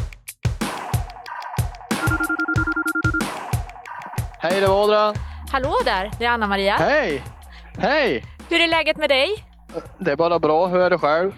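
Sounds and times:
rhythmic beat with thumping pulses: 0:00.0 - 0:10.1
telephone ringback tone on outgoing call: 0:02.0 - 0:03.3
speech: 0:04.4 - 0:11.3.

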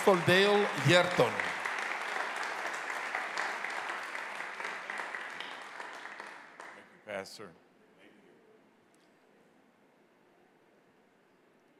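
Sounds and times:
speech: 0:00.0 - 0:01.5, 0:07.2 - 0:07.6
large crowd applauding to welcome a guest speaker: 0:00.0 - 0:06.8.

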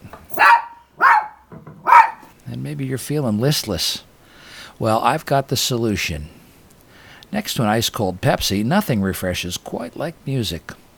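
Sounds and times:
dog barking: 0:00.3 - 0:02.3
speech: 0:02.6 - 0:04.1, 0:04.8 - 0:06.4, 0:07.3 - 0:10.8.

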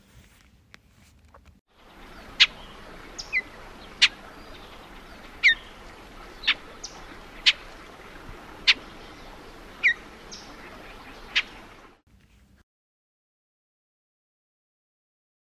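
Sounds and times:
faint steady outdoor hiss: 0:00.0 - 0:12.6
icterid bird giving sharp single-note chip calls: 0:01.8 - 0:11.9.

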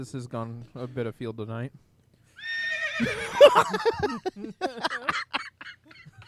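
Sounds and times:
speech: 0:00.0 - 0:01.9, 0:03.0 - 0:05.4
horse whinnying and sputtering: 0:02.4 - 0:03.5
laughter: 0:03.0 - 0:06.2.

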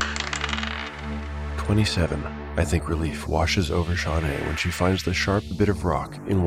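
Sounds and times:
dice clattering: 0:00.0 - 0:01.4
speech: 0:01.7 - 0:06.4.

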